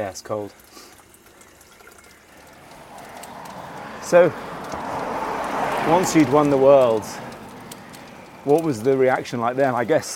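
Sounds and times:
speech: 0.0s - 0.9s, 4.1s - 5.2s, 5.8s - 7.2s, 8.4s - 10.1s
cold water pouring into a glass: 0.0s - 6.2s.

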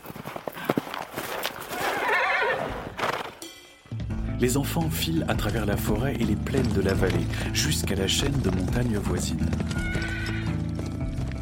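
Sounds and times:
pony hoofbeats galloping: 0.0s - 3.4s, 4.6s - 11.4s
distant pony whinnying: 1.8s - 3.0s, 9.7s - 10.6s
speech: 4.4s - 9.9s.

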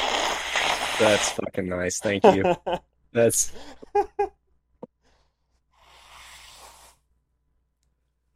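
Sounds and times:
nose blow against the microphone: 0.0s - 1.4s, 5.8s - 7.0s
speech: 1.0s - 4.4s
laughter: 2.1s - 2.8s, 3.6s - 4.4s.

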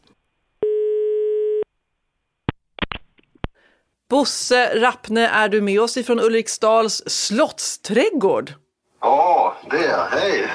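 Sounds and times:
telephone ringback tone while calling: 0.6s - 1.7s
speech: 4.1s - 10.5s.

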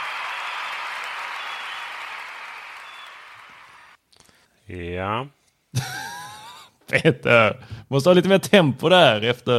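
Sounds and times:
crowd applause: 0.0s - 4.0s
speech: 4.7s - 5.9s, 6.9s - 9.5s
laughter: 5.8s - 7.2s.

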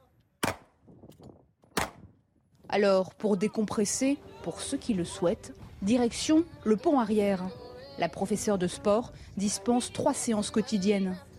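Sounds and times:
gunshots during a shooting drill aboard a navy ship: 0.4s - 0.7s, 1.7s - 2.0s
speech: 2.7s - 11.3s.

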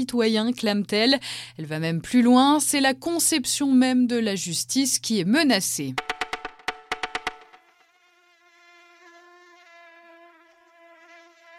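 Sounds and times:
speech: 0.0s - 6.2s
sharp rhythmic pulses: 6.0s - 7.8s
mosquito whining: 7.6s - 11.5s.

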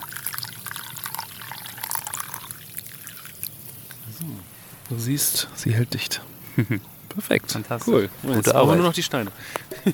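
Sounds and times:
water poured into a bowl: 0.0s - 3.7s
speech: 4.2s - 9.9s
laughter: 6.5s - 6.9s, 7.9s - 9.9s.

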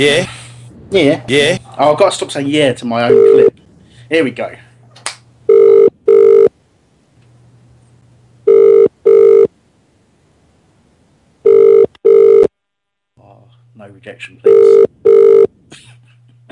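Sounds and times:
speech: 0.0s - 4.7s, 13.8s - 15.8s
telephone ringing tone while calling: 3.1s - 3.5s, 5.5s - 6.5s, 8.5s - 9.5s, 11.4s - 12.5s, 14.5s - 15.5s.

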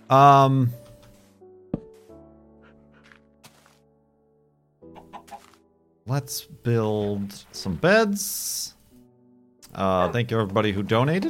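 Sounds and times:
speech: 0.1s - 0.8s, 6.1s - 8.8s, 9.7s - 11.2s
chicken clucking squawk while being shooed away: 5.0s - 5.6s.

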